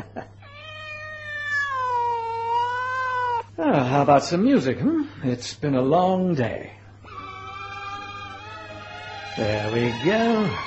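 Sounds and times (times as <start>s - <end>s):
cat meowing: 0.4s - 3.5s, 7.1s - 9.6s
speech: 3.6s - 6.8s, 9.4s - 10.6s.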